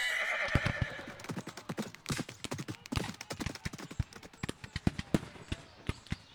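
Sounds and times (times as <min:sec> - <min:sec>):
horse neighing as its rider sets off into battle: 0:00.0 - 0:01.3
horse hooves clopping: 0:00.0 - 0:05.8.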